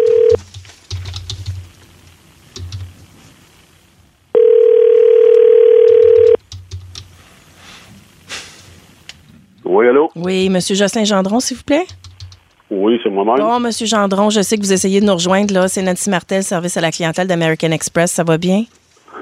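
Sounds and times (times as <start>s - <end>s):
telephone dial tone: 0.0s - 0.4s, 4.4s - 6.4s
clicks and taps of keys pressed to place a call: 6.4s - 7.1s, 11.7s - 12.6s
speech: 10.3s - 12.0s, 12.8s - 19.2s.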